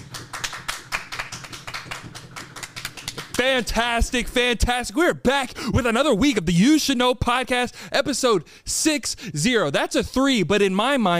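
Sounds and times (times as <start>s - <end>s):
small group applauding with dense overlapping hand claps: 0.0s - 3.7s
speech: 3.4s - 11.1s.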